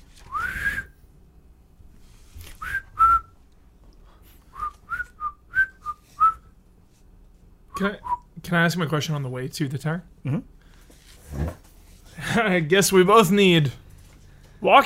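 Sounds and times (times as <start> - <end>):
person whistling a simple tune: 0.3 - 0.9, 2.6 - 3.3, 4.5 - 6.5
speech: 7.8 - 10.5, 12.4 - 13.8, 14.6 - 14.8.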